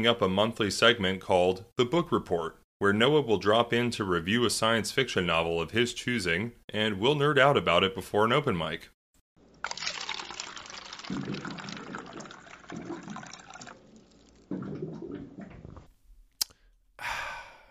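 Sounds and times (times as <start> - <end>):
speech: 0.0 - 9.0, 11.1 - 11.5
water cooler gurgling and filling: 9.4 - 15.9.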